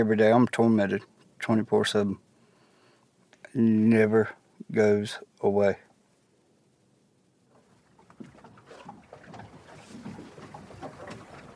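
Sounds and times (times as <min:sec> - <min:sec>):
speech: 0:00.0 - 0:02.2, 0:03.6 - 0:05.8
wind: 0:00.0 - 0:11.5
boat moving across water with splashing and rushing: 0:07.6 - 0:11.5.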